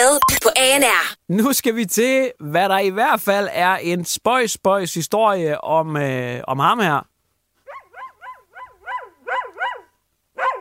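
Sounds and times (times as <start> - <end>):
speech: 0.1 - 7.1
dog barking: 7.6 - 10.6.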